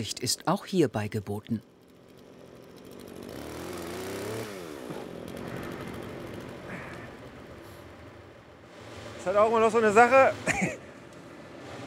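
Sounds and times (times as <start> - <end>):
speech: 0.0 - 1.7, 9.2 - 10.8
chainsaw engine revving and cutting tree tops: 1.9 - 7.5.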